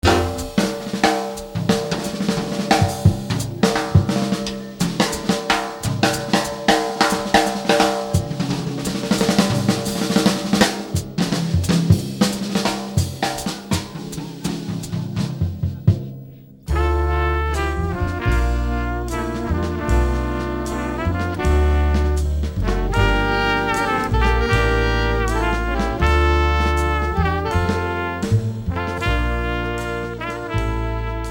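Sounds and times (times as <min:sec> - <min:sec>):
blues drums: 0:00.0 - 0:31.2.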